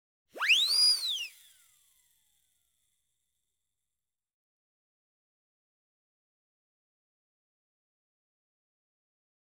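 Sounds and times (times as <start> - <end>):
short siren: 0.4 - 1.6.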